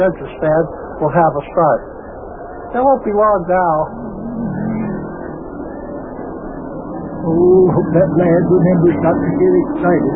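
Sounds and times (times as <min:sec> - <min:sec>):
speech: 0:00.0 - 0:02.0, 0:02.7 - 0:04.1, 0:07.2 - 0:10.1
race car engines roaring around a track: 0:03.8 - 0:10.1.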